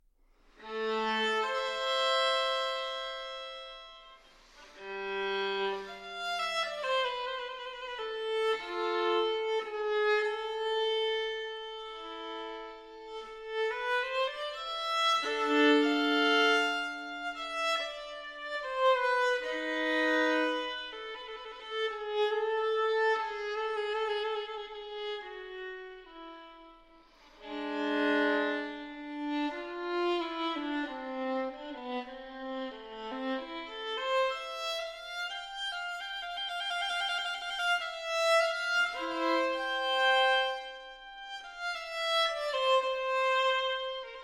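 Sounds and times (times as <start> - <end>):
violin sonata in A minor grave movement: 0.4 - 44.2.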